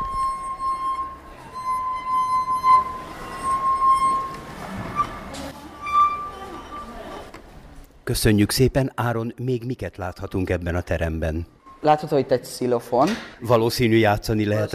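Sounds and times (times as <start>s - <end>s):
slow melody on water-filled stemmed glasses: 0.0s - 7.1s
speech: 8.1s - 14.7s.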